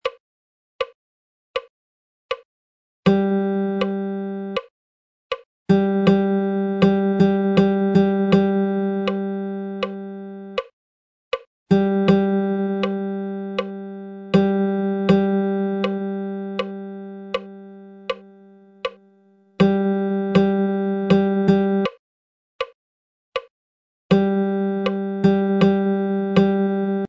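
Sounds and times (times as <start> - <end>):
guitar playing a dotted and tied rhythm example: 3.1 - 4.6, 5.7 - 10.7, 11.7 - 19.0, 19.6 - 22.0, 24.1 - 27.0.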